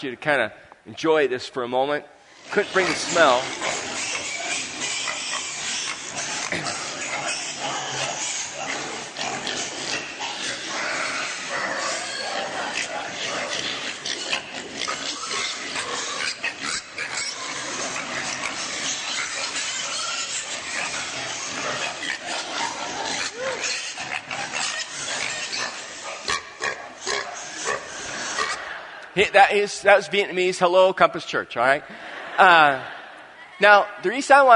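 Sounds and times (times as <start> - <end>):
speech: 0.0 - 3.7, 29.4 - 33.0, 33.6 - 34.5
crowded pen of young pigs squealing and grunting: 2.3 - 29.0
laughter: 28.4 - 29.3, 31.8 - 34.0.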